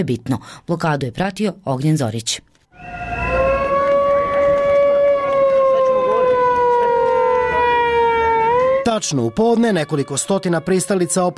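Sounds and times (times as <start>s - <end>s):
speech: 0.0s - 3.0s, 8.9s - 11.3s
loud wailing sirens at a street protest outside a television building entrance: 2.8s - 11.3s.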